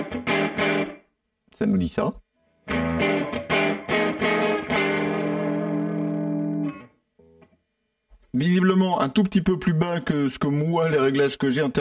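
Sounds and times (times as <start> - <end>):
speech: 1.6 - 2.2, 8.4 - 11.7
electric guitar with single-coil neck-pickup tone strumming through an effects pedal: 2.7 - 6.9.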